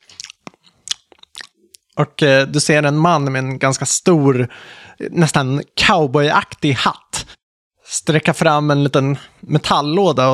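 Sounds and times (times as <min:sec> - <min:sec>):
crunchy chewing: 0:00.0 - 0:02.0
speech: 0:02.0 - 0:07.0, 0:07.9 - 0:10.3.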